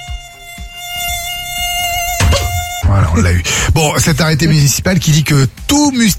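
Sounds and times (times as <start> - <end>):
tiger mosquito buzzing in flight: 0.0 - 2.9
soft low thuds: 2.0 - 3.0
speech: 3.2 - 6.1.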